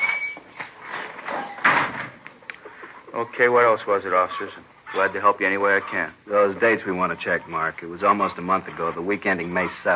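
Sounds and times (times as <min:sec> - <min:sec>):
brief high squeak of a stiff door: 0:00.0 - 0:00.6
speech: 0:03.2 - 0:09.9.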